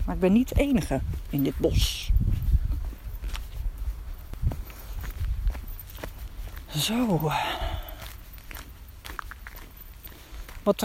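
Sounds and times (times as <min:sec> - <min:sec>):
footsteps crunching along a forest path: 0:00.0 - 0:10.8
leaves and twigs rustling underfoot in a forest: 0:00.0 - 0:10.8
speech: 0:00.1 - 0:02.5, 0:06.8 - 0:07.7, 0:10.6 - 0:10.8.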